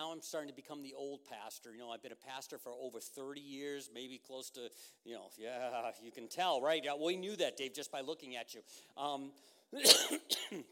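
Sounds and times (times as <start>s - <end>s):
speech: 0.2s - 10.7s
man clearing throat: 9.8s - 10.7s
man coughing: 9.8s - 10.7s.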